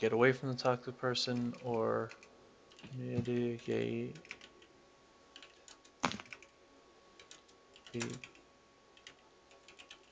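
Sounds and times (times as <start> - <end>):
speech: 0.0 - 4.4, 7.9 - 8.3
computer keyboard typing: 4.1 - 4.6, 5.3 - 6.5, 7.2 - 8.4, 9.0 - 10.1.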